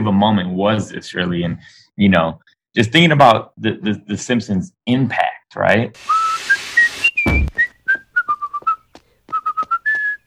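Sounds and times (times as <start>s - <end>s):
speech: 0.0s - 6.3s
brief burst of noise: 6.0s - 7.6s
person whistling a bouncy tune: 6.1s - 10.2s.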